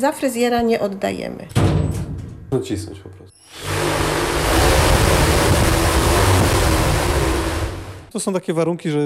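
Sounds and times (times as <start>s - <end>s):
speech: 0.0s - 3.3s, 8.1s - 9.0s
strong wind from a pedal-operated hurricane simulator: 3.7s - 8.0s.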